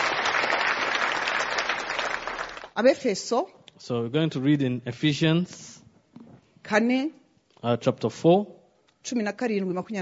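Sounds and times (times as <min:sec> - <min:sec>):
audience applauding: 0:00.0 - 0:02.8
speech: 0:02.8 - 0:05.7, 0:06.7 - 0:10.0.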